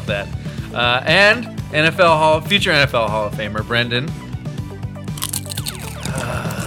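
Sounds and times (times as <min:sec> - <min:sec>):
speech: 0:00.1 - 0:04.2
person eating chips into a microphone: 0:05.1 - 0:06.6.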